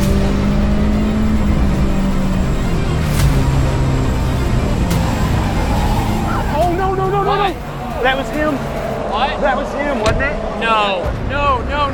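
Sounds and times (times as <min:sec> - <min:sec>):
race car engines roaring around a racetrack: 0:00.0 - 0:11.9
race cars knocking together on contact: 0:02.9 - 0:11.4.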